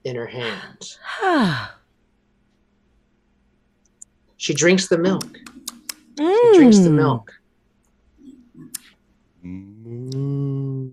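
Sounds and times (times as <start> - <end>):
speech: 0.0 - 1.8, 4.4 - 5.5, 6.2 - 7.4, 9.4 - 10.9
human voice imitating distant cow moos: 9.4 - 10.9.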